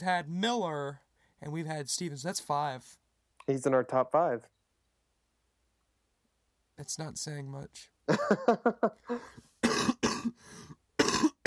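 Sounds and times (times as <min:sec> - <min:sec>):
speech: 0:00.0 - 0:04.6, 0:06.8 - 0:09.5
laughter: 0:08.1 - 0:09.3
person coughing: 0:09.1 - 0:10.4, 0:11.0 - 0:11.4
heavier harsh hacking coughs: 0:09.6 - 0:10.4, 0:11.0 - 0:11.4.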